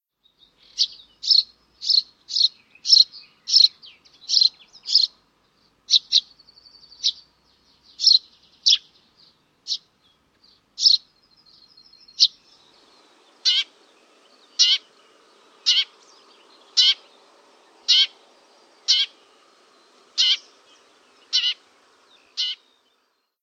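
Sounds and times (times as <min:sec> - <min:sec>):
sparrow and young sparrow calling: 0:00.2 - 0:23.4.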